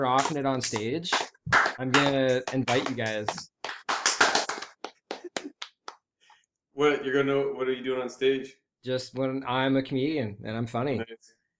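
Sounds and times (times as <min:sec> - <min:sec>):
speech: 0:00.0 - 0:03.5, 0:06.8 - 0:11.4
soft polite golf clap: 0:00.2 - 0:06.1.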